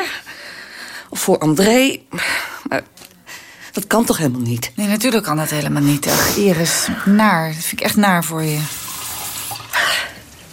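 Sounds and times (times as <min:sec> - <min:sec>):
faint noise: 0:00.0 - 0:10.5
speech: 0:01.1 - 0:03.0, 0:03.7 - 0:08.8
water being poured for someone to drink: 0:08.5 - 0:09.8.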